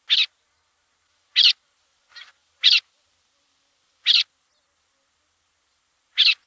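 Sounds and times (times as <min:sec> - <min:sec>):
lesser grey shrike voice: 0:01.4 - 0:02.9, 0:04.0 - 0:04.3.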